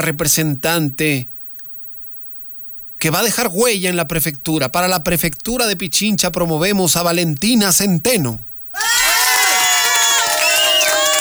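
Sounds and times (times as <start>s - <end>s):
speech: 0.0s - 1.4s, 3.0s - 9.0s
crowd cheering and shouting at an event presenting candidates: 8.8s - 11.1s.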